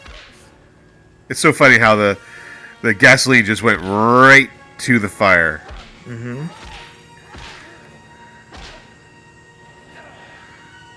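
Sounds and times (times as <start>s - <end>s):
speech: 1.3s - 6.8s
baseball bat striking leather jackets and baseball gloves: 5.6s - 7.9s, 8.5s - 8.9s.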